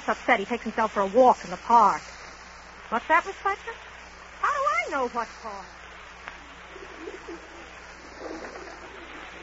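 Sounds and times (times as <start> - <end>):
steady hiss of outdoor ambience: 0.0 - 9.4
speech: 0.1 - 2.1, 2.9 - 3.9, 4.9 - 5.8, 7.1 - 7.5
pigeon cooing: 6.6 - 9.4.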